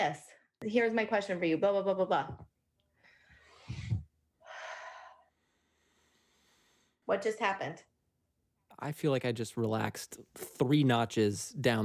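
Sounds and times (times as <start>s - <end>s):
speech: 0.0s - 2.5s, 7.1s - 7.9s, 8.8s - 11.8s
slow deep breath in and out: 2.9s - 7.0s.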